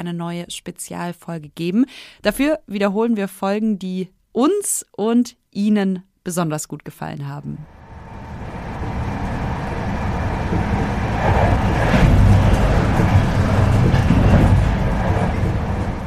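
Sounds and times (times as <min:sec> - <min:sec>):
speech: 0:00.0 - 0:07.8
night train rumbling and clattering on rails: 0:07.6 - 0:16.0.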